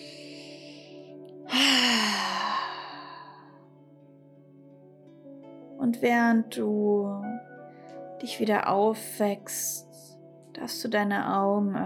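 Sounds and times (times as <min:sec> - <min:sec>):
deep breath exhaled with a voiced hum during a relaxation exercise: 0:01.5 - 0:03.6
speech: 0:05.8 - 0:07.5, 0:08.2 - 0:09.9, 0:10.6 - 0:11.8.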